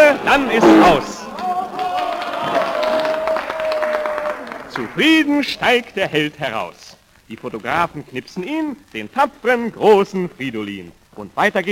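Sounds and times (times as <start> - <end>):
large crowd cheering and roaring at a race track: 0.0 - 5.0
speech: 0.3 - 1.2, 5.0 - 11.6.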